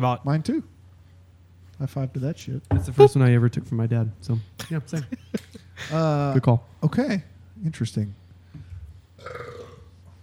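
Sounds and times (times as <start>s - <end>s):
speech: 0.0s - 0.7s, 1.8s - 8.2s, 9.2s - 9.5s
burp: 9.2s - 9.9s.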